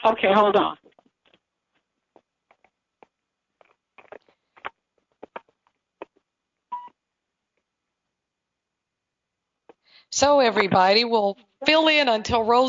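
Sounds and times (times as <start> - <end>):
speech: 0.1 - 0.8, 10.1 - 12.6
mobile phone electronic beeps and clicks: 6.7 - 6.9.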